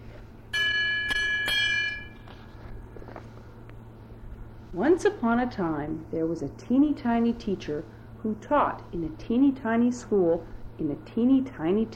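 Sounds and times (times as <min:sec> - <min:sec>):
bright page-turn bell chime: 0:00.6 - 0:02.2
speech: 0:04.7 - 0:11.9.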